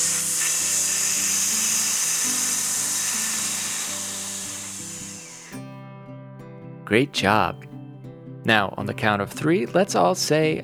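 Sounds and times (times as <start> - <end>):
voice hissing on exhale during a breathing exercise: 0.0 - 5.7
speech: 6.9 - 7.7, 8.4 - 10.6.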